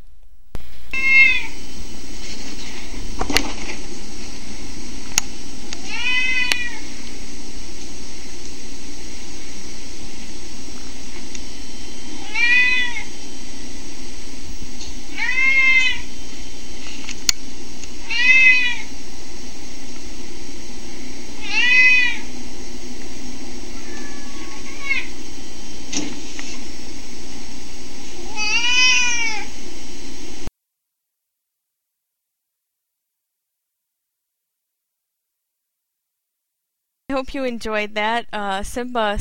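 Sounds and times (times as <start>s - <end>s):
steady low hum: 0.0s - 30.5s, 37.1s - 39.1s
cat meowing: 0.9s - 1.6s, 5.8s - 6.8s, 12.2s - 13.1s, 15.1s - 16.1s, 18.0s - 18.9s, 21.4s - 22.3s, 23.7s - 25.1s, 28.2s - 29.5s
speech: 37.2s - 39.1s.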